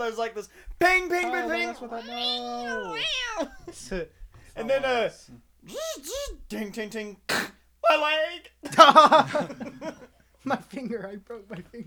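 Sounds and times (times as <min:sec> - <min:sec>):
speech: 0:00.0 - 0:11.8
laughter: 0:00.8 - 0:05.0, 0:08.6 - 0:11.0
cat meowing: 0:01.2 - 0:03.7.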